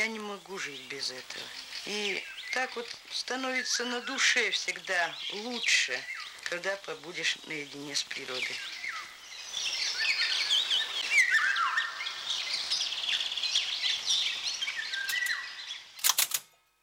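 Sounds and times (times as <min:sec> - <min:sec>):
dawn chorus of chirping birds: 0:00.0 - 0:16.8
golden oriole song: 0:00.0 - 0:16.8
speech: 0:00.5 - 0:08.8
sharp clicks: 0:15.1 - 0:15.4, 0:16.0 - 0:16.8.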